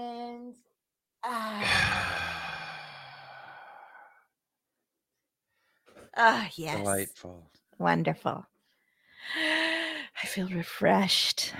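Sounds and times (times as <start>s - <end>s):
deep breath let out as a long voiced sigh: 1.5s - 4.3s
speech: 6.2s - 8.5s, 10.3s - 11.5s.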